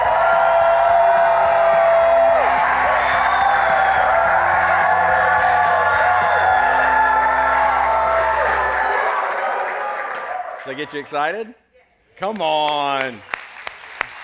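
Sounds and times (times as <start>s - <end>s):
large crowd shouting and cheering a greeting: 0.0s - 11.3s
speech: 10.8s - 11.6s, 12.2s - 13.3s.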